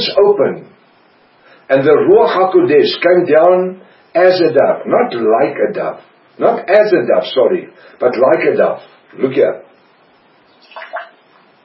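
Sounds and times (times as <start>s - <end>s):
speech: 0.0s - 0.8s, 1.7s - 9.6s
water thrown out of a glass splashing: 10.6s - 11.2s.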